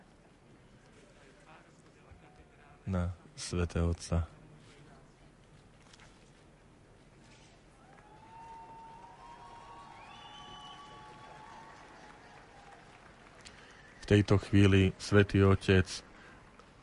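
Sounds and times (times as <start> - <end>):
speech: 2.9 - 4.4, 14.1 - 16.1
large crowd shouting and cheering in Italian: 7.8 - 12.9
steady applause: 7.8 - 16.8.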